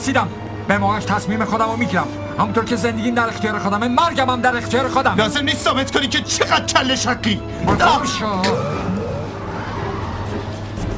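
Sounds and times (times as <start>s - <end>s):
speech: 0.0s - 9.0s
car skidding out of control: 7.6s - 10.9s
car tire and engine roar: 8.3s - 10.9s.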